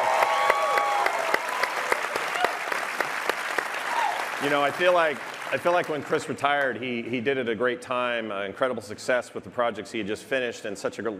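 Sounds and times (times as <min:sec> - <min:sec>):
audience applause: 0:00.0 - 0:06.4
speech: 0:04.4 - 0:11.1.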